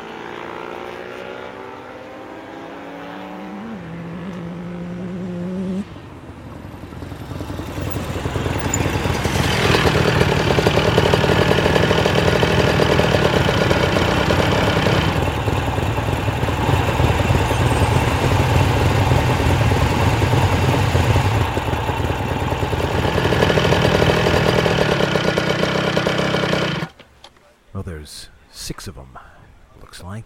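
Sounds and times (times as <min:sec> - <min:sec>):
many motorcycles pulling into a diner driveway and idling: 0:06.1 - 0:27.0.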